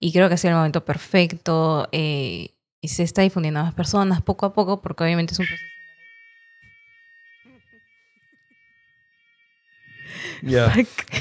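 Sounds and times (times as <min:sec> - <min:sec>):
speech: 0:00.0 - 0:05.8, 0:10.1 - 0:11.1
apartment fire alarm blaring a high-pitched tone: 0:05.2 - 0:10.6.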